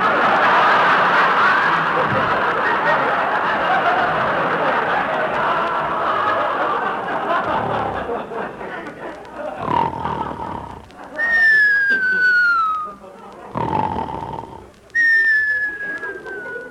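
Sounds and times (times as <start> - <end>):
laughter: 0.0 - 16.6
rough snore-like breath: 7.4 - 8.2, 9.6 - 10.9, 13.5 - 14.8
long slowly falling whistles: 11.2 - 13.0, 14.9 - 16.6.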